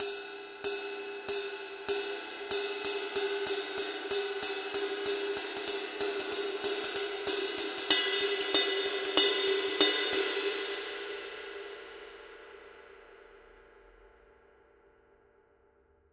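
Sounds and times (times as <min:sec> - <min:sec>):
ride cymbal pattern: 0:00.0 - 0:11.0.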